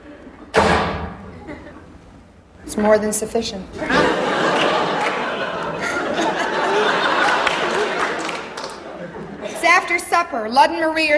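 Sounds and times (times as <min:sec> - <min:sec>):
door slamming: 0:00.5 - 0:01.4
laughter: 0:01.3 - 0:01.9, 0:03.8 - 0:10.0
speech: 0:02.7 - 0:04.2, 0:09.8 - 0:11.1.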